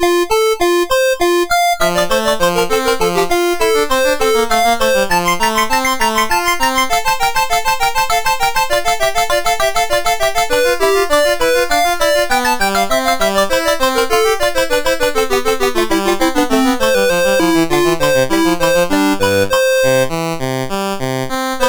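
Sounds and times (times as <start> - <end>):
chiptune piece on MOS6581R3 chip: 0.0 - 20.9.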